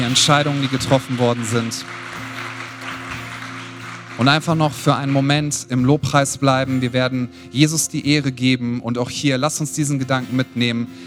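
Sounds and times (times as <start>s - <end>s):
speech: 0.0s - 2.2s, 4.2s - 11.0s
church audience applauding during worship: 0.0s - 7.1s.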